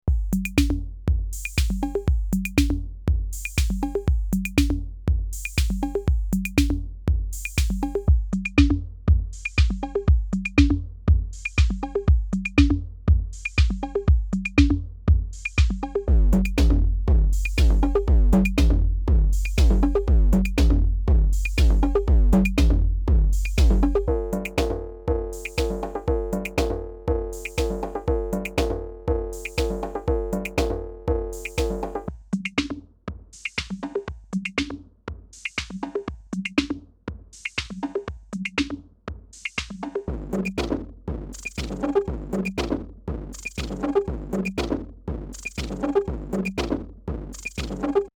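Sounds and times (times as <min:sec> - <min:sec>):
drum loop: 0:00.1 - 0:48.1.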